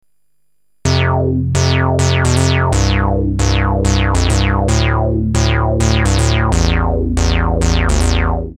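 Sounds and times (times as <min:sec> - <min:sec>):
musical fifths: 0:00.9 - 0:08.5.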